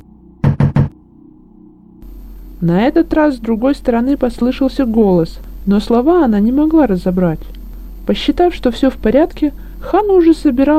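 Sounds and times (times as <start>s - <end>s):
knocking on a door: 0.4s - 0.9s
speech: 2.6s - 10.7s.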